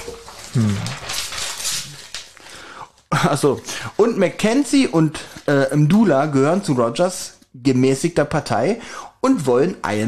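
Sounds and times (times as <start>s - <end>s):
paper page turning: 0.0s - 5.5s
speech: 0.6s - 1.1s, 3.2s - 10.0s.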